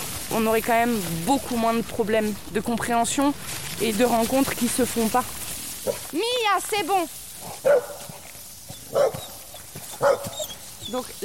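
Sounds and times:
speech: 0:00.3 - 0:08.0, 0:10.0 - 0:11.2
dog barking at a passing dog: 0:05.8 - 0:06.0, 0:07.6 - 0:10.6.

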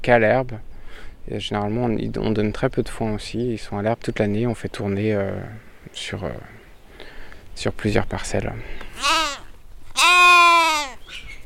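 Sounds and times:
speech: 0:00.0 - 0:00.7, 0:01.3 - 0:06.6, 0:07.6 - 0:09.2
bottle-fed lambs bleating: 0:09.0 - 0:11.0.

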